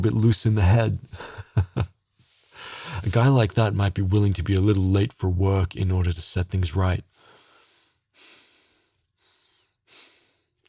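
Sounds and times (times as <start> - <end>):
speech: 0.0 - 1.9, 3.0 - 7.1
rapid heavy anxious breathing: 2.3 - 3.1, 7.2 - 10.6.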